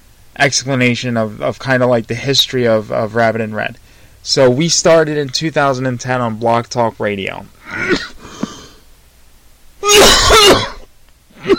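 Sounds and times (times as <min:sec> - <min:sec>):
speech: 0:00.4 - 0:08.1
loud harsh raspy coughing: 0:07.6 - 0:08.7, 0:09.8 - 0:11.5
person clearing throat: 0:07.7 - 0:08.5, 0:09.8 - 0:11.5.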